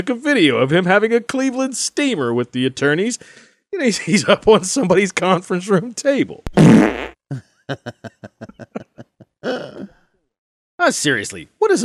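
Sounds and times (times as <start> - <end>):
speech: 0.0 - 8.8, 10.8 - 11.8
long sputtering fart sound effect: 6.5 - 7.2
laughter: 7.3 - 9.9.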